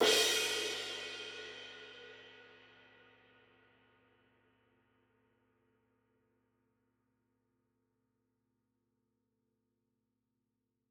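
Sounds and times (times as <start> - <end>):
high crash cymbal, analog recorded drum: 0.0 - 2.8.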